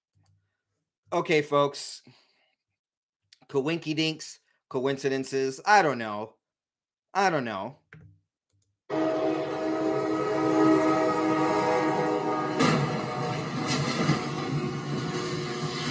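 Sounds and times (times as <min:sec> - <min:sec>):
speech: 0:01.1 - 0:02.2, 0:03.5 - 0:06.4, 0:07.1 - 0:08.0
train horn blaring: 0:08.9 - 0:15.8
train crashing into an 18-wheeler truck: 0:12.5 - 0:15.8.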